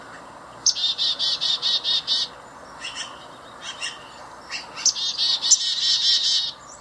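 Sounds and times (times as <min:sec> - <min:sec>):
Black-capped Chickadee chickadee-dee-dee call: 0:00.0 - 0:06.6.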